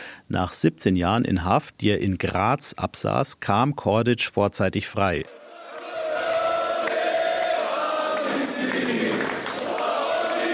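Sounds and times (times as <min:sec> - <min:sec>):
speech: 0:00.3 - 0:05.5
hundreds of supporters cheering in airport terminal: 0:05.2 - 0:10.5.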